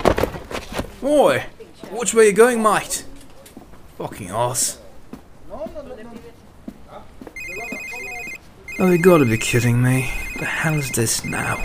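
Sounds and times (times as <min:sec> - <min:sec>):
speech: 0:01.0 - 0:03.1, 0:04.0 - 0:04.8, 0:08.8 - 0:11.6
mobile phone electronic trill ringtone: 0:07.4 - 0:11.6.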